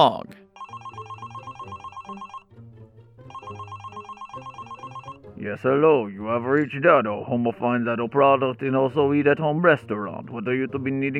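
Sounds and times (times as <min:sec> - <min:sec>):
speech: 0:00.0 - 0:00.4, 0:05.4 - 0:11.1
telephone ringing with a bright electronic ringtone: 0:00.6 - 0:02.5, 0:03.3 - 0:05.2.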